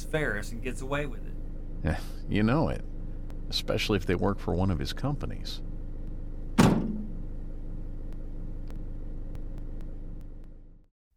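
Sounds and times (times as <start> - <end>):
news van engine low rumble as the van drives off: 0.0 - 10.8
speech: 0.1 - 2.9, 3.5 - 5.7
heavy news van door slamming shut: 6.6 - 7.2.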